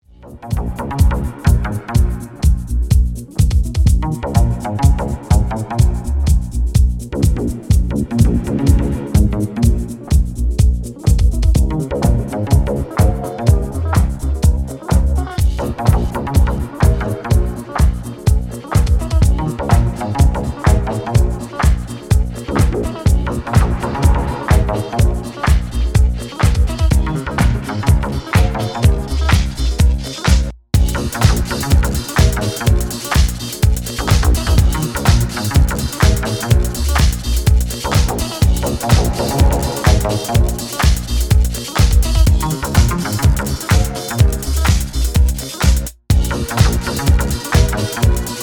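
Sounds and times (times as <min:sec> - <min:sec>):
disco track with wonky bassline: 0:00.4 - 0:48.4.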